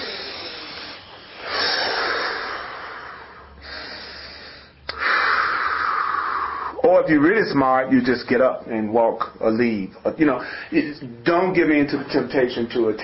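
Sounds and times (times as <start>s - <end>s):
person demonstrating deep breathing: 0.0s - 6.8s, 10.4s - 10.8s
speech: 7.0s - 13.0s.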